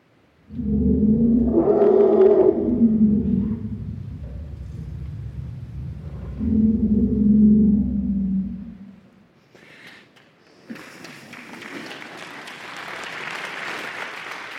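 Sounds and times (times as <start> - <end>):
elephants calling in celebration of a newborn calf: 0.4 - 9.1.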